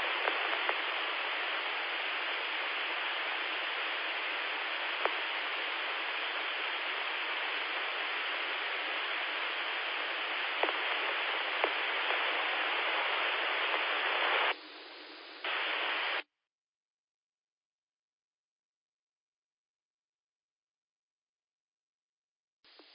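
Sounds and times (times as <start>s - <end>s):
white noise hiss over an open radio carrier: 0.0s - 16.2s, 22.7s - 22.9s.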